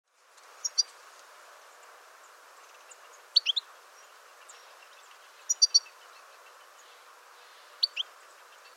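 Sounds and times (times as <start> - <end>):
faint steady hiss: 0.1 - 8.7
European goldfinch calls: 0.6 - 0.9, 2.6 - 8.7.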